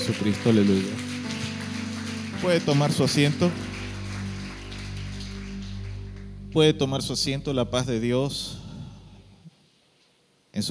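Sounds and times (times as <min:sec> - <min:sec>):
speech: 0:00.0 - 0:01.1, 0:02.4 - 0:03.6, 0:06.5 - 0:08.6
audience applauding: 0:00.0 - 0:06.8
low hum: 0:03.5 - 0:09.5.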